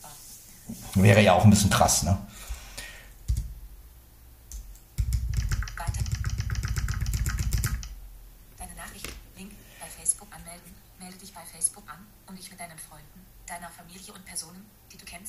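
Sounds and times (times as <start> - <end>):
speech: 0.7 - 2.3
typing on a Windows computer keyboard: 3.3 - 3.5, 4.5 - 8.0.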